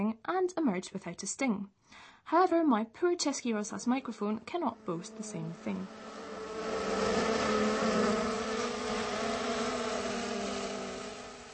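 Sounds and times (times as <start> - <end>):
speech: 0.0 - 6.8
many honeybees buzzing around open hives: 4.3 - 11.5.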